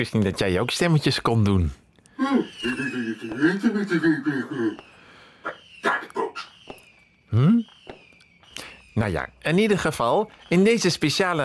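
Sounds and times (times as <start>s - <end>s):
speech: 0.0s - 5.6s, 7.3s - 7.7s, 9.0s - 11.4s
laughter: 2.2s - 4.9s
fireworks crackling and popping: 2.5s - 5.8s, 6.5s - 11.4s.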